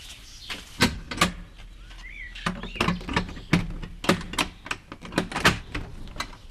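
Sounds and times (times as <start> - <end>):
heavy wine cellar door being worked open at a vineyard in Slovenia: 2.5 - 6.4.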